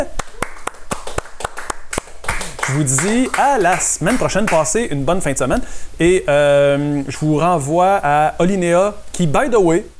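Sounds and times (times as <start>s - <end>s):
audience applause with hands clapping: 0.0s - 4.8s
speech: 2.7s - 9.9s.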